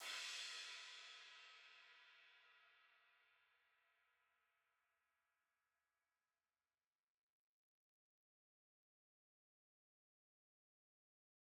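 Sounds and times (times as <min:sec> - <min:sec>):
analog recorded high crash cymbal: 0:00.0 - 0:03.5.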